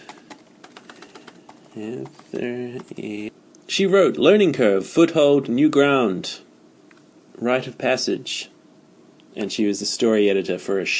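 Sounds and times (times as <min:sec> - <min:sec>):
rapid keyboard typing: 0:00.0 - 0:03.3
brief hummed voice sound: 0:01.0 - 0:03.4
speech: 0:01.8 - 0:06.5, 0:07.4 - 0:08.6, 0:09.3 - 0:10.9.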